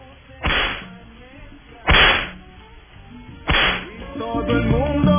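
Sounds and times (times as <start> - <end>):
whip lashes cracking with a sharp bright snap: 0.4 - 0.9, 1.9 - 2.4, 3.5 - 3.9
speech: 4.2 - 5.0.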